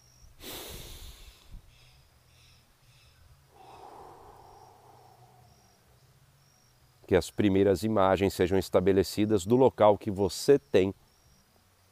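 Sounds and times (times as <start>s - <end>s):
deep guided breath pulled in sharply through the nose: 0.4s - 1.6s, 3.5s - 5.5s
long soft exhale: 0.4s - 1.6s, 3.5s - 5.8s
speech: 7.1s - 11.0s.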